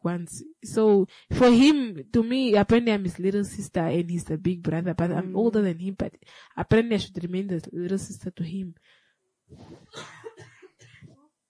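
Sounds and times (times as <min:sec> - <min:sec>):
speech: 0:00.0 - 0:10.5
harsh coughs: 0:09.9 - 0:11.2.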